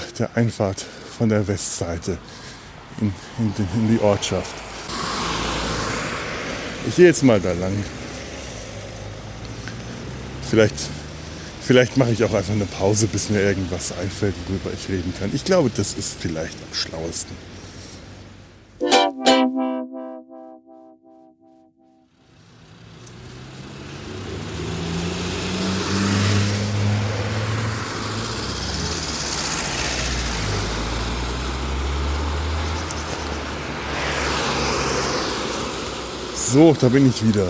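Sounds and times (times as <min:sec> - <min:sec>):
cars passing on a village road: 0:00.0 - 0:18.7, 0:22.4 - 0:37.4
steady rumble of road traffic: 0:00.0 - 0:18.8, 0:22.3 - 0:37.4
speech: 0:00.2 - 0:04.7, 0:06.8 - 0:08.0, 0:10.5 - 0:11.0, 0:11.7 - 0:17.6, 0:36.5 - 0:37.4
brief tonal blare: 0:18.8 - 0:22.0.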